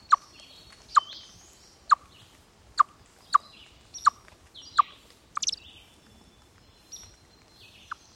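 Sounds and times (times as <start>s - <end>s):
chipmunk alarm call in response to an aerial predator: 0.0s - 0.3s, 0.9s - 1.3s, 1.9s - 2.1s, 2.8s - 5.6s.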